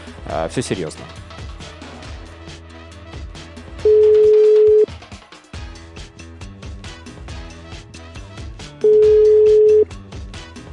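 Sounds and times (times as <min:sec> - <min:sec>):
continuous music: 0:00.0 - 0:10.7
speech: 0:00.2 - 0:01.3
phone line ringback beeps while calling a hotline in Moscow: 0:03.9 - 0:04.9, 0:08.8 - 0:09.9.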